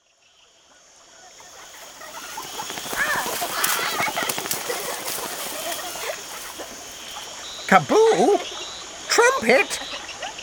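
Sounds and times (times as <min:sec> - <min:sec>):
laughter: 0:01.3 - 0:08.5, 0:09.1 - 0:10.4
jungle bird chirps and calls: 0:01.3 - 0:10.4
steady high insect buzz in jungle by a lake: 0:01.3 - 0:10.4
soft watery rustling by a lake: 0:01.4 - 0:07.8
speech: 0:07.7 - 0:09.9.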